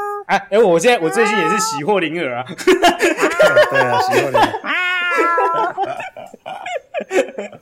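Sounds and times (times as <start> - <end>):
house cat letting out a drawn-out meow: 0.0 - 1.9, 3.3 - 5.9
people chattering: 0.0 - 7.4
speech: 0.3 - 6.1
people laughing: 0.9 - 7.5.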